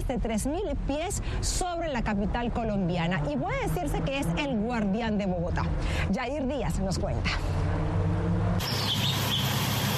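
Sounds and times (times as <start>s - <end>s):
speech: 0.1s - 7.9s
steady outdoor hiss: 8.6s - 9.9s
thin high-pitched hummingbird chirps: 8.6s - 9.9s.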